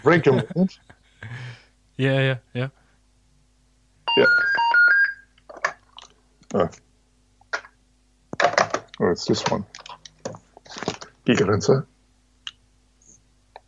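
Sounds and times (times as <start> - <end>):
speech: 0.0 - 2.8, 4.2 - 4.6, 6.5 - 6.8, 9.0 - 9.7, 11.2 - 11.9
phone ringtone of bright electronic tones: 4.1 - 5.2.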